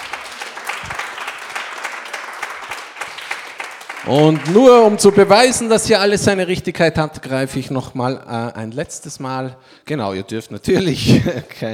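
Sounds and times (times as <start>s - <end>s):
audience applause: 0.0s - 5.8s
speech: 4.0s - 11.7s.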